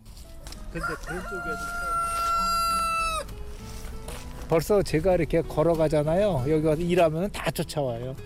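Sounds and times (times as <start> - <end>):
speech: 0.7 - 1.9, 4.5 - 8.2
rooster crowing: 0.8 - 3.3.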